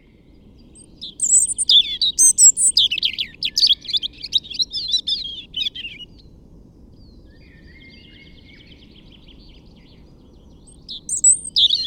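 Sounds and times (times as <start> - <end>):
European robin Erithacus rubecula singing: 0.7 - 6.2, 10.5 - 11.8.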